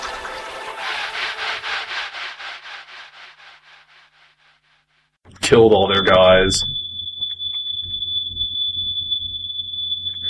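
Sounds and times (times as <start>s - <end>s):
fire alarm shrill high-pitched electronic tone: 5.4s - 10.2s
speech: 5.5s - 6.8s.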